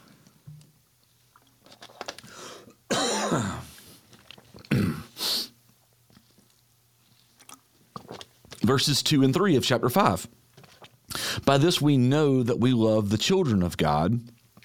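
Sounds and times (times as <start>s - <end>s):
person sipping and swallowing water: 1.0s - 2.8s, 3.7s - 8.7s, 10.6s - 11.3s, 14.3s - 14.6s
person clearing throat in raspy bursts: 2.9s - 3.7s, 4.6s - 5.2s
speech: 3.3s - 3.6s, 8.7s - 10.4s, 11.5s - 14.4s.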